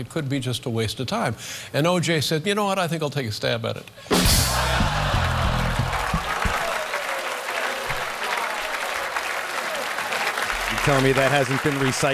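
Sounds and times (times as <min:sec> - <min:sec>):
speech: 0:00.0 - 0:04.9, 0:10.8 - 0:12.1
large audience booing after a joke: 0:04.1 - 0:11.2
crowd noise: 0:04.1 - 0:12.1
large audience clapping: 0:04.4 - 0:12.1.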